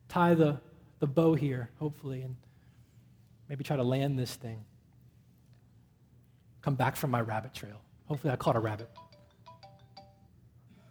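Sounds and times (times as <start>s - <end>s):
low hum: 0.0s - 10.8s
speech: 0.1s - 2.5s, 3.5s - 4.7s, 6.6s - 9.1s
phone ringtone: 8.8s - 10.3s.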